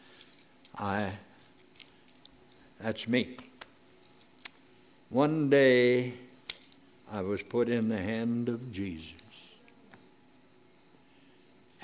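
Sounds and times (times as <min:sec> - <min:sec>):
car keys jangling: 0:00.0 - 0:02.3, 0:06.5 - 0:06.8
speech: 0:00.8 - 0:01.3, 0:02.8 - 0:03.5, 0:05.1 - 0:06.3, 0:07.1 - 0:09.2.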